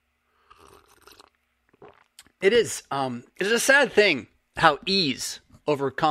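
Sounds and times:
slurping sips of cold brew coffee: 0:00.4 - 0:02.2
wet mouth and swallowing sounds: 0:00.4 - 0:02.4
speech: 0:02.4 - 0:06.1.

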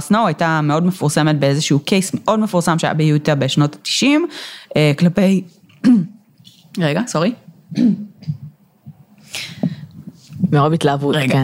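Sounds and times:
speech: 0:00.0 - 0:08.4, 0:10.4 - 0:11.4
person choking coughing and gasping: 0:05.8 - 0:06.2, 0:07.7 - 0:08.4.

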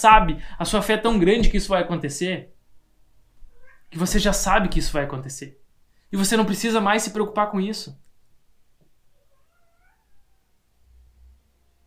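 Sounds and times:
speech: 0:00.0 - 0:02.5, 0:03.9 - 0:08.0
cat meowing: 0:03.4 - 0:04.0, 0:09.1 - 0:10.6.

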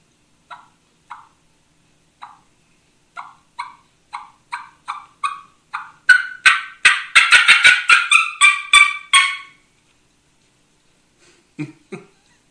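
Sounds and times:
turkey mouth call imitating fly-down cackle: 0:00.5 - 0:01.4, 0:02.2 - 0:02.5, 0:03.2 - 0:09.6.

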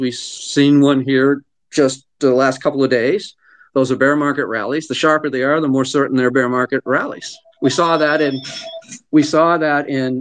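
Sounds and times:
speech: 0:00.0 - 0:10.1
phone ringing with a loud electronic ringtone: 0:06.9 - 0:09.2.

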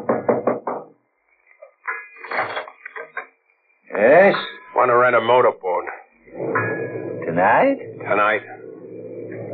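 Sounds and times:
knocking on a door: 0:00.0 - 0:01.0
speech: 0:04.0 - 0:05.7, 0:07.4 - 0:08.6.

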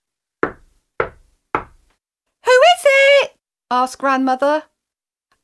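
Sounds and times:
firm knocks on a wooden door: 0:00.4 - 0:01.9
speech: 0:03.7 - 0:04.7.

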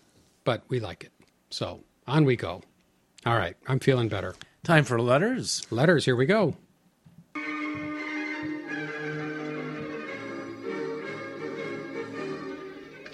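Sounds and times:
speech: 0:00.5 - 0:06.6
peal of bells: 0:07.4 - 0:13.1.

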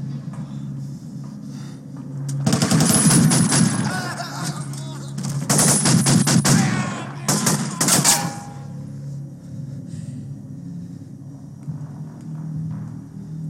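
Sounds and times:
loud rapid bursts of gunfire from a film clip: 0:02.4 - 0:04.0, 0:05.4 - 0:08.1.

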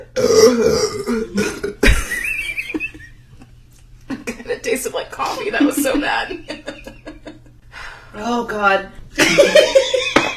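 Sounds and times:
long loud gravelly burp: 0:00.0 - 0:01.8
speech: 0:00.0 - 0:01.8, 0:08.3 - 0:09.7
laughter: 0:05.2 - 0:07.6, 0:09.2 - 0:10.3
quiet breathing: 0:07.6 - 0:08.2.

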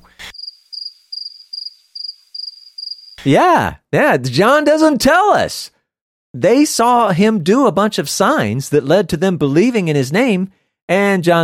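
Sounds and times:
crickets chirping: 0:00.0 - 0:03.2
speech: 0:03.2 - 0:11.4.

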